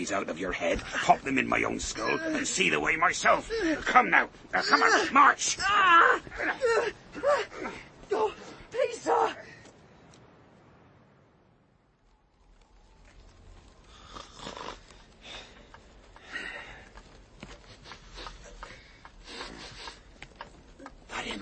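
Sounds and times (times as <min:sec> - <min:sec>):
speech: 0:00.0 - 0:08.3
man snoring while sleeping by the fire: 0:14.0 - 0:14.8.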